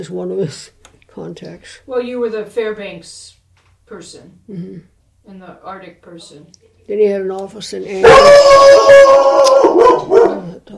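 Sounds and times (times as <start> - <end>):
speech: 0.0 - 10.7
dog barking and howling: 8.0 - 10.6.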